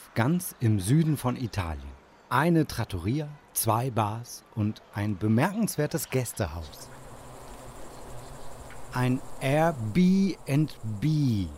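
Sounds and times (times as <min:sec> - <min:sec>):
speech: 0:00.2 - 0:07.0, 0:08.9 - 0:11.5
bees buzzing at a guest house in Grottole in southern Italy: 0:06.7 - 0:11.5.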